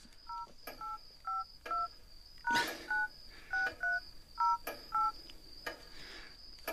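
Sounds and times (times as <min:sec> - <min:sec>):
thin whine: 0:00.0 - 0:06.7
mobile phone keypad dual-tone beeps entering a PIN: 0:00.3 - 0:05.2.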